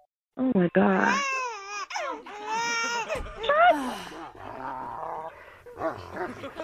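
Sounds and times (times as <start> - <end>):
speech: 0.4 - 1.3, 5.8 - 6.6
baby wailing in a home: 0.9 - 3.7
dog barking and growling in a home: 4.3 - 6.6.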